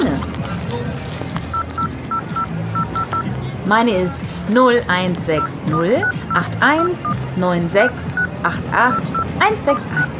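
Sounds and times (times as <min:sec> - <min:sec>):
low noise: 0:00.0 - 0:10.1
mobile phone keypad beeps as a number is dialed: 0:01.5 - 0:03.3, 0:05.4 - 0:07.2, 0:08.2 - 0:10.1
speech: 0:03.7 - 0:10.1.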